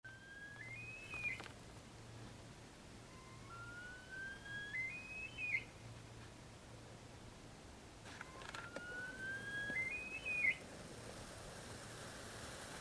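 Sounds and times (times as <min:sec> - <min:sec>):
Himalayan snowcock whistling: 0:00.1 - 0:01.5, 0:03.1 - 0:05.7, 0:08.2 - 0:10.6
background hiss: 0:00.1 - 0:12.7
low hum: 0:00.1 - 0:12.7.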